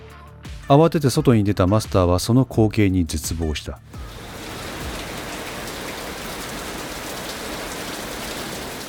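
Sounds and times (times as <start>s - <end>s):
speech: 0.7s - 4.2s
torrential rain from a linear rainband pouring down: 3.9s - 8.8s.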